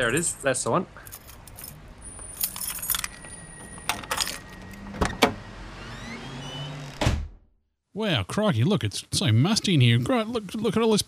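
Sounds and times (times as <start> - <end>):
speech: 0.0 - 1.2, 8.0 - 11.0
metal studio keys jangling as they are dug out: 1.1 - 4.8
thud: 7.0 - 7.4.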